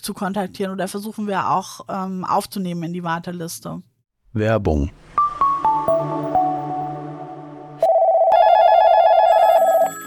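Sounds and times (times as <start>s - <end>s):
speech: 0.0s - 5.2s
falling chime notes: 5.2s - 10.0s
electronic telephone ring: 7.8s - 10.0s.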